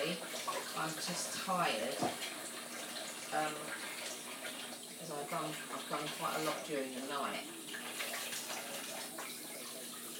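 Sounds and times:
speech: 0.0s - 2.4s, 3.3s - 3.9s, 5.0s - 7.6s
hot water running from a tap: 0.0s - 10.1s.

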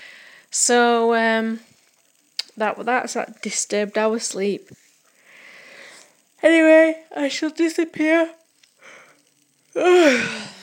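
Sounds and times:
speech: 0.7s - 1.7s, 2.6s - 4.8s, 6.4s - 8.4s, 9.8s - 10.5s
person yawning: 9.8s - 10.6s.

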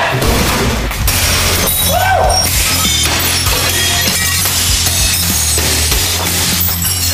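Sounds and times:
steady low rumble: 0.1s - 2.9s
glass breaking and shattering: 0.3s - 7.1s.

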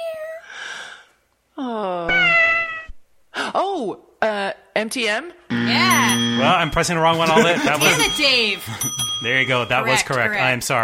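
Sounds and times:
speech: 1.6s - 2.2s, 3.8s - 10.8s
cat meowing in a studio logo jingle: 2.1s - 3.0s
laughter: 7.0s - 9.2s.

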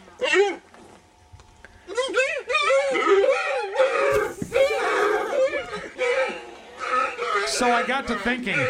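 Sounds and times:
several deer screaming and bleating in a pen: 2.4s - 8.6s
short deer squeals: 3.9s - 7.4s
speech: 7.6s - 8.6s.

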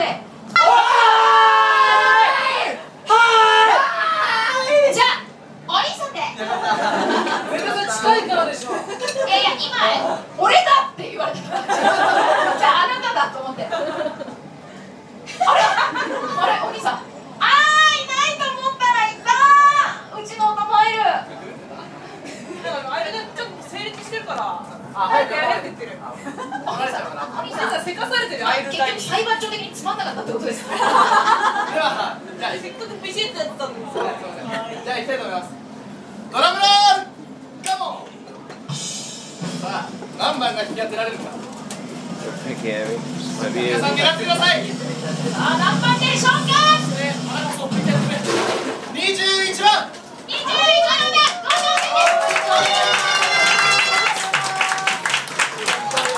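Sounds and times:
bar ambience: 0.0s - 51.2s
staff shouting holding a raffle: 0.5s - 5.2s, 49.5s - 56.1s
laughter: 6.4s - 8.0s, 8.6s - 10.2s, 11.4s - 14.5s, 15.2s - 17.0s, 26.1s - 27.7s, 30.5s - 32.4s.

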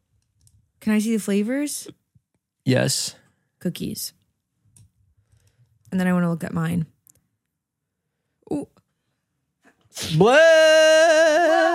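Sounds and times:
speech: 0.8s - 2.0s, 2.6s - 4.2s, 5.9s - 6.9s, 8.5s - 8.7s, 9.9s - 11.7s
person sneezing: 9.9s - 10.2s.

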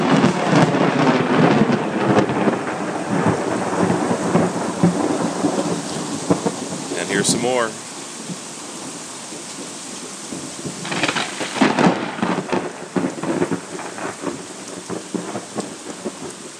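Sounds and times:
low rolling thunder rumbling: 0.0s - 7.0s, 10.3s - 16.4s
steady dense rain hissing: 0.0s - 16.5s
speech: 7.3s - 7.9s.

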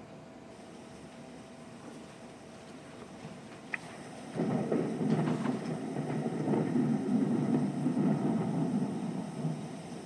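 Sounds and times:
low rolling thunder rumbling: 3.3s - 10.0s.

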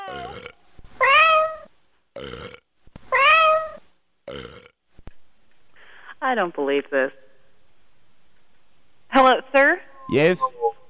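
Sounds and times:
cat grumbling over a phone line: 0.0s - 0.5s
cat yowling over a phone line: 1.0s - 1.7s, 3.1s - 3.8s
speech: 6.3s - 7.2s, 10.1s - 10.6s.

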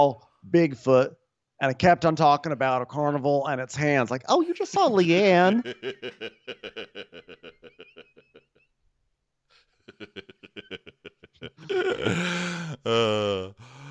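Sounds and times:
speech: 0.0s - 7.8s, 11.7s - 13.7s
laughter: 4.4s - 8.7s, 9.8s - 13.3s
person yawning: 11.6s - 13.8s.

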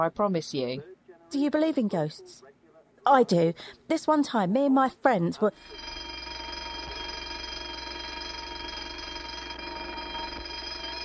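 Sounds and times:
speech: 0.0s - 6.0s
electronic security alarm ringing: 5.5s - 11.0s.

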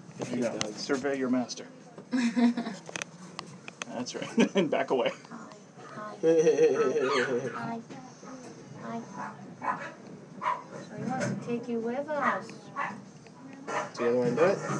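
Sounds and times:
speech: 0.2s - 3.0s, 3.9s - 5.4s, 6.2s - 8.0s, 8.9s - 10.0s, 11.0s - 13.1s, 13.7s - 14.7s
laughter: 6.2s - 7.5s
dog barking: 9.2s - 10.8s, 12.2s - 13.0s, 13.7s - 14.7s.

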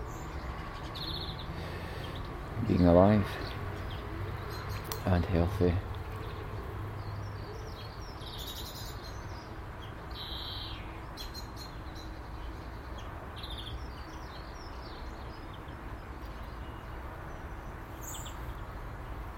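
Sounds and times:
bird chirping trill on a morning: 0.0s - 19.2s
steady outdoor hiss: 1.4s - 3.5s
speech: 2.7s - 3.6s, 5.0s - 5.9s.

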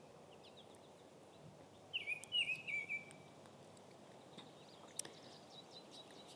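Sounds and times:
scattered chirps from other songbirds: 0.0s - 6.3s
steady outdoor hiss: 0.0s - 6.3s
oriole whistled song phrase: 2.0s - 3.2s.

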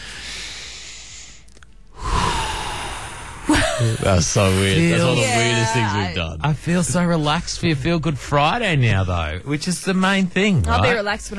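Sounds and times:
people taking a deep breath together: 0.0s - 3.8s
speech: 3.8s - 11.3s.

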